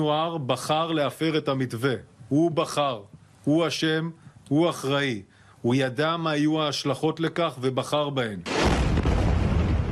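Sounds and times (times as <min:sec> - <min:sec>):
speech: 0:00.0 - 0:08.8
explosions and artillery fire: 0:08.5 - 0:09.9.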